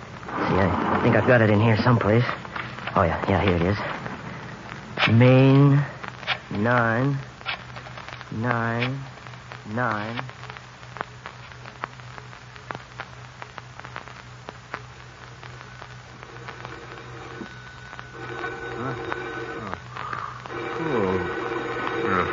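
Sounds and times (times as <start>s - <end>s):
low steady hum: 0.0s - 22.3s
speech: 0.6s - 4.0s, 5.0s - 5.9s, 6.5s - 7.3s, 8.3s - 9.1s, 9.7s - 10.4s
telephone ringing tone: 16.2s - 19.8s, 20.5s - 22.3s.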